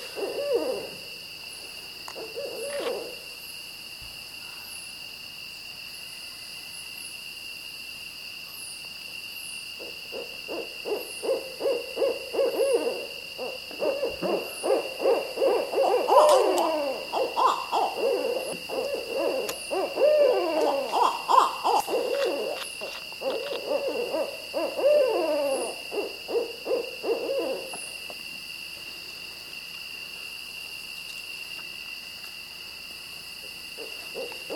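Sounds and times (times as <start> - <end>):
barred owls hooting and caterwauling: 0.0 - 1.2, 2.1 - 3.2, 9.8 - 27.9, 33.8 - 34.5
steady high insect buzzing: 0.0 - 34.5.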